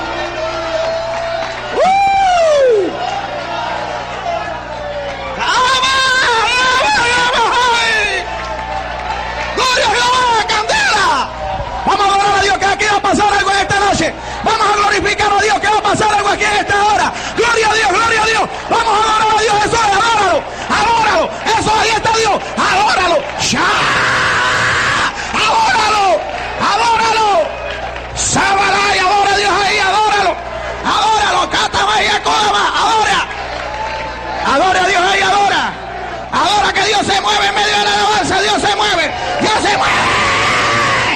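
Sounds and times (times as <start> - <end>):
audience shouting and yelling: 0.0 - 41.1.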